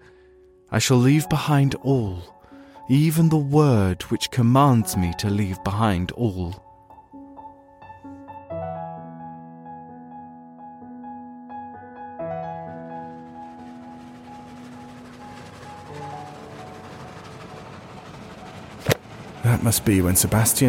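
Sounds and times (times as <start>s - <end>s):
speech: 0.7s - 6.6s, 19.6s - 20.6s
train passing along rails: 12.6s - 20.6s.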